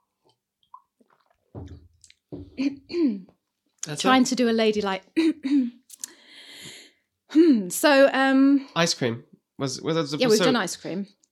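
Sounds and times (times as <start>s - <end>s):
person clearing throat with something stuck in it: 2.6s - 3.3s
speech: 2.6s - 3.3s, 3.9s - 5.8s, 7.4s - 11.2s.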